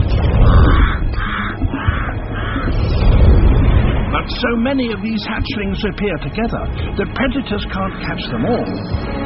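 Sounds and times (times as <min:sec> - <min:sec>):
constant low rumbling background: 0:00.0 - 0:09.2
pied crow cawing: 0:00.4 - 0:02.8
speech: 0:04.4 - 0:09.2.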